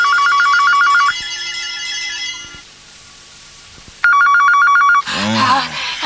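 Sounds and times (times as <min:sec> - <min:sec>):
electronic warbling telephone ringing at night: 0:00.0 - 0:02.6, 0:04.0 - 0:05.0
person speaking: 0:05.0 - 0:06.0.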